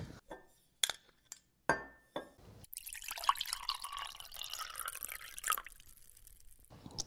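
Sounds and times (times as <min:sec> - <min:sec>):
sharp glassy clinks: 0:01.7 - 0:05.6
red wine poured steadily into a glass: 0:02.7 - 0:06.7.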